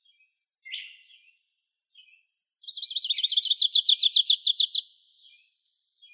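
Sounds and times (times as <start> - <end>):
Grace's warbler song in Arizona: 0.0 - 6.1.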